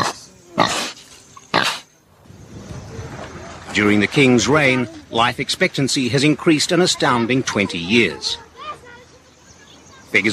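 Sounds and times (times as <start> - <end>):
pigs grunting in Bhutan: 0.0 - 1.9
speech: 3.8 - 8.4, 10.1 - 10.3.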